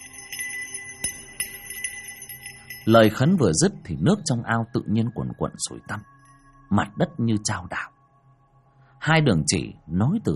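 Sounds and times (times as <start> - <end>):
hand bell shaken during a prayer ritual: 0.0 - 3.6
speech: 2.9 - 7.9, 9.0 - 10.3.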